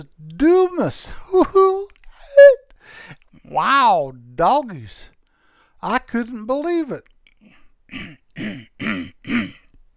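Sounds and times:
speech: 0:00.0 - 0:01.8, 0:03.6 - 0:05.1, 0:05.8 - 0:07.1, 0:07.9 - 0:09.6
rough guttural throat clearing: 0:07.9 - 0:09.8.

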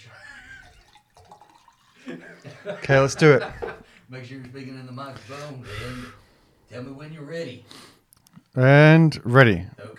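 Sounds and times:
laughter: 0:00.0 - 0:00.9, 0:02.0 - 0:04.0
drink being poured into a glass: 0:00.3 - 0:02.5
speech: 0:02.0 - 0:07.9, 0:08.5 - 0:09.9.

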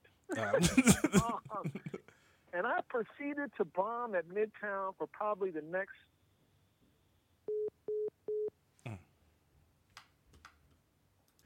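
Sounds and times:
laughter: 0:00.3 - 0:02.0
speech: 0:00.4 - 0:01.8, 0:02.6 - 0:06.2
phone busy signal beeps from a phone glitching in the sun: 0:07.5 - 0:08.5.

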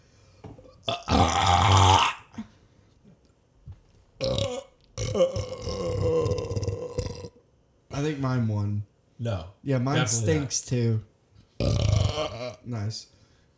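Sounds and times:
person burping: 0:00.8 - 0:02.5, 0:04.2 - 0:07.4, 0:11.6 - 0:12.7
speech: 0:00.9 - 0:01.3, 0:08.0 - 0:11.1, 0:12.6 - 0:13.2.

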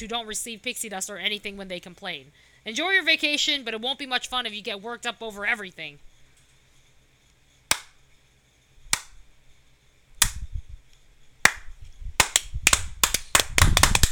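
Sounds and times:
speech: 0:00.0 - 0:06.1
slow deliberate hand clapping: 0:07.7 - 0:08.0, 0:11.4 - 0:14.1.

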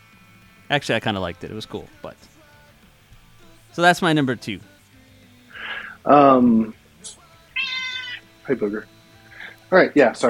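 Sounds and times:
speech: 0:00.7 - 0:02.4, 0:03.8 - 0:04.7, 0:06.0 - 0:07.2, 0:08.5 - 0:08.9, 0:09.7 - 0:10.2
cat meowing: 0:07.6 - 0:08.2.

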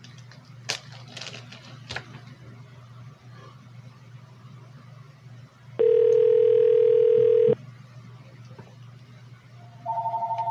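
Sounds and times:
telephone ringing: 0:05.8 - 0:07.6, 0:09.9 - 0:10.4.

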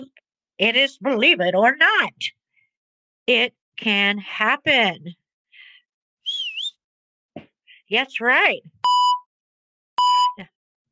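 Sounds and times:
speech: 0:00.6 - 0:02.4, 0:03.3 - 0:05.2, 0:07.9 - 0:08.8
clear steady electronic beep: 0:08.8 - 0:09.3, 0:10.0 - 0:10.4.

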